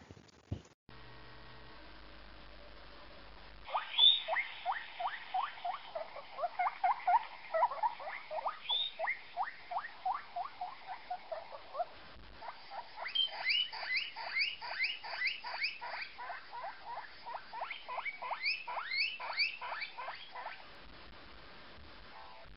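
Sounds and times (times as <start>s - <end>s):
guinea pig purring and squealing vocalizations: 2.1s - 20.8s.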